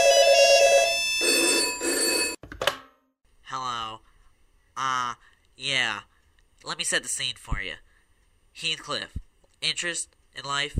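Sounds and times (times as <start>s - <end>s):
telephone ringing for an incoming call: 0.0s - 2.4s
speech: 5.6s - 7.9s, 8.6s - 10.7s.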